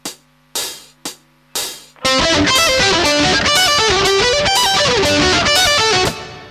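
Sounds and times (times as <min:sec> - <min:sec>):
advanced arpeggio: 0:02.0 - 0:06.5.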